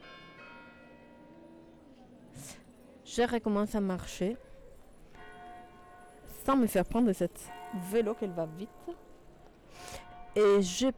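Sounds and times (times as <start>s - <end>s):
church bells ringing the hour on a street: 0.0s - 1.7s, 4.7s - 10.9s
speech: 3.1s - 4.5s, 6.5s - 9.1s, 10.4s - 10.9s.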